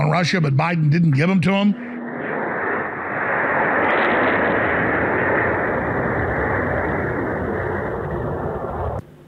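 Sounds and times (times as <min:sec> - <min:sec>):
speech: 0:00.1 - 0:01.8
missile roaring overhead: 0:01.6 - 0:09.0
missile explosion rumbling: 0:01.7 - 0:09.0.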